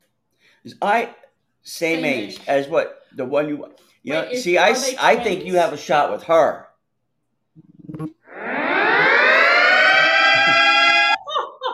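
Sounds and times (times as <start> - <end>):
speech: 0.6 - 6.7
alarm siren blaring: 8.3 - 11.2.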